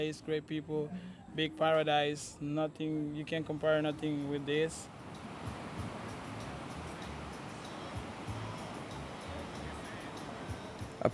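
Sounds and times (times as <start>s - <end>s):
speech: 0.0s - 5.6s
ocean waves breaking on a beach: 3.3s - 11.0s.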